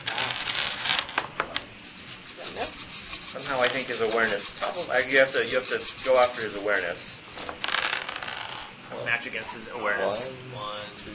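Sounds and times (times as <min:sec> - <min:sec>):
handful of dice rolled across a hard tabletop: 0:00.0 - 0:01.6, 0:07.4 - 0:08.7
speech: 0:03.5 - 0:07.2, 0:09.1 - 0:11.1.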